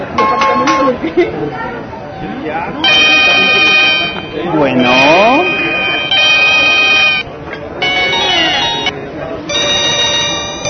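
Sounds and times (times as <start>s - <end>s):
faint murmur: 0.0s - 10.6s
speech: 1.0s - 3.7s, 4.4s - 5.6s
telephone ringing with a bright electronic melodic tone: 2.8s - 8.9s, 9.5s - 10.6s.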